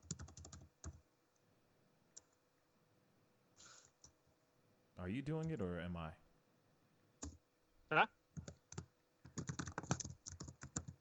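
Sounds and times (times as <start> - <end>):
rapid typing on a computer keyboard: 0.0 - 1.0, 8.4 - 10.9
speech: 5.0 - 6.2, 7.9 - 8.2.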